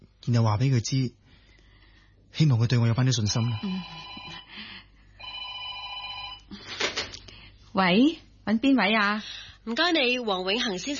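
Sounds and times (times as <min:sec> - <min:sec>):
speech: 0:00.2 - 0:01.2, 0:02.3 - 0:04.2, 0:07.8 - 0:10.9
telephone bell ringing: 0:03.3 - 0:04.6, 0:05.2 - 0:06.5.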